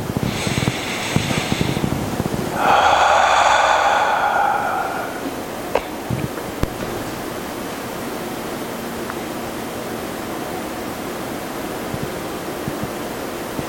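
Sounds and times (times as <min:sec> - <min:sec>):
deep breath drawn in during a guided prayer: 0:00.0 - 0:07.2.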